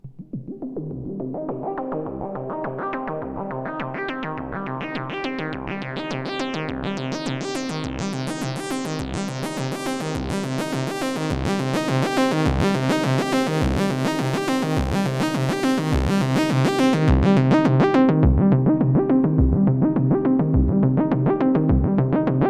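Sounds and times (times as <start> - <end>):
Moog Grandmother analog synthesizer: 0.1 - 22.4.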